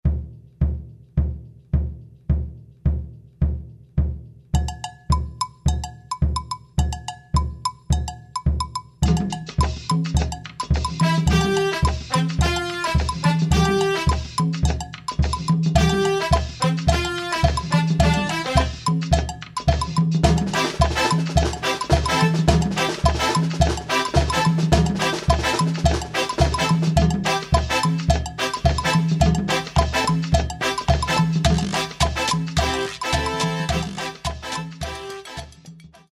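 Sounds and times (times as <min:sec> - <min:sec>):
samba percussion: 0:00.0 - 0:36.1
brass playing: 0:11.0 - 0:14.4, 0:15.8 - 0:18.9, 0:20.5 - 0:36.0.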